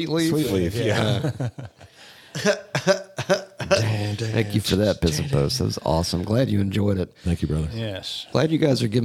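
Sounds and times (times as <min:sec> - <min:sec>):
speech: 0:00.0 - 0:09.0
laughter: 0:00.6 - 0:05.6
harsh throaty coughs: 0:02.3 - 0:04.5.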